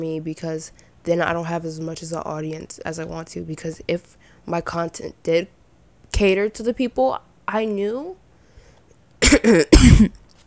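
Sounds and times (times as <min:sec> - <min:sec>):
speech: 0:00.0 - 0:08.2, 0:09.3 - 0:10.2
loud harsh coughs: 0:09.2 - 0:10.2.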